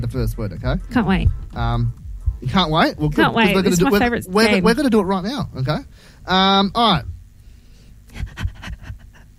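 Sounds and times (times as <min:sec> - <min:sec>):
speech: 0:00.0 - 0:07.1
nervous rapid heavy panting: 0:08.1 - 0:09.3.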